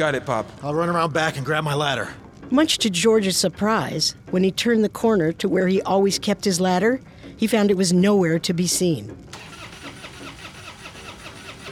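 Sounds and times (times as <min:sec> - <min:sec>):
speech: 0:00.0 - 0:09.5
truck engine cranking but failing to start: 0:09.3 - 0:11.7.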